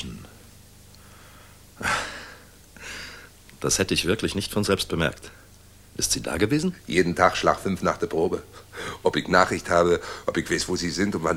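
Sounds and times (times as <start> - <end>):
breathing in through flared nostrils: 1.0 - 3.4, 10.0 - 10.3
speech: 3.6 - 5.4, 6.0 - 11.3.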